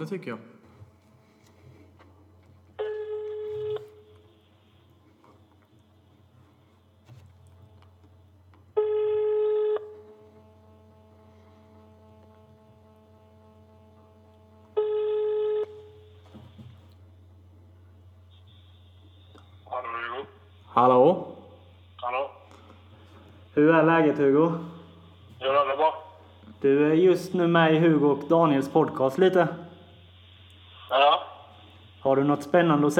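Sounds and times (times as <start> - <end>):
speech: 0.0 - 0.6, 20.8 - 21.3, 23.6 - 24.7, 26.6 - 29.6, 32.1 - 32.9
low hum: 0.9 - 32.9
telephone ringback tone while an outgoing call waits to connect: 2.8 - 4.1, 8.8 - 10.0, 14.8 - 16.1.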